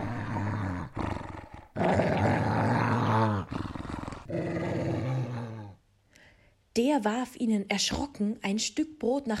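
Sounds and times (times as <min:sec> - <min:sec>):
deep menacing animal growls and snarling roars: 0:00.0 - 0:05.8
speech: 0:06.8 - 0:09.3.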